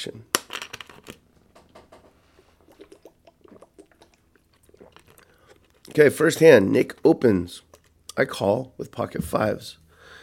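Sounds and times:
speech: 0:00.0 - 0:00.4, 0:06.0 - 0:09.8
person sipping water with wet slurps and swallows: 0:02.2 - 0:07.0, 0:07.6 - 0:08.1.

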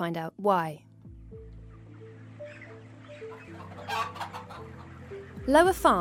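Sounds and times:
speech: 0:00.0 - 0:01.4, 0:05.5 - 0:05.9
many chickens clucking in a chicken shed: 0:01.6 - 0:05.4.

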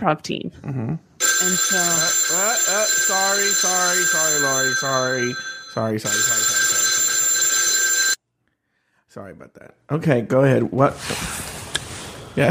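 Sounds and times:
speech: 0:00.0 - 0:06.7, 0:09.2 - 0:11.5
telephone bell ringing: 0:01.2 - 0:08.2.

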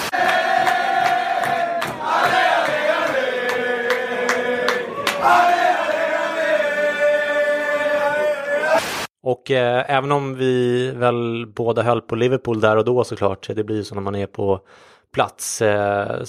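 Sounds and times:
sharp rhythmic hits: 0:00.0 - 0:04.5
football fans chanting in unison in a pub before a match: 0:00.0 - 0:08.8
speech: 0:09.4 - 0:16.2.

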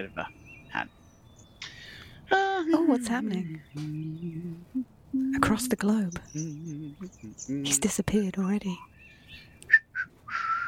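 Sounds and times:
speech: 0:00.0 - 0:01.0, 0:02.3 - 0:10.5
thin steady whistle: 0:09.7 - 0:10.6.

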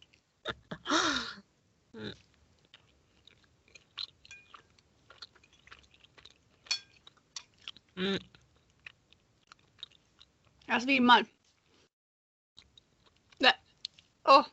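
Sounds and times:
wet chewing of a big mouthful of food: 0:02.1 - 0:10.7, 0:12.6 - 0:14.2
speech: 0:08.0 - 0:08.3, 0:10.8 - 0:11.4.

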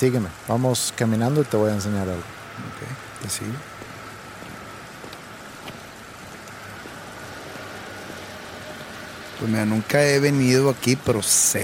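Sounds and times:
speech: 0:00.0 - 0:03.8, 0:09.4 - 0:11.6
low hum of traffic: 0:00.0 - 0:11.6
steady rain falling outdoors on a street in London: 0:00.0 - 0:11.6.

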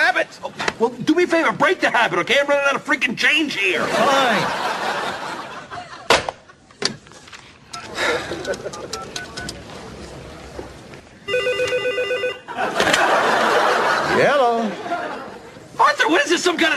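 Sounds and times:
busy noise: 0:00.0 - 0:16.7
speech: 0:00.3 - 0:05.0, 0:08.0 - 0:09.4, 0:14.2 - 0:14.8, 0:15.8 - 0:16.7
laughter: 0:03.7 - 0:06.7, 0:07.8 - 0:09.2, 0:12.4 - 0:15.8
telephone ringing: 0:11.2 - 0:12.5.

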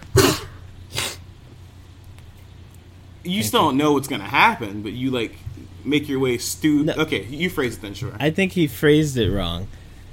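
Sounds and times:
low steady hum: 0:00.0 - 0:10.1
dog sneezing: 0:00.1 - 0:01.2
speech: 0:03.2 - 0:09.8.

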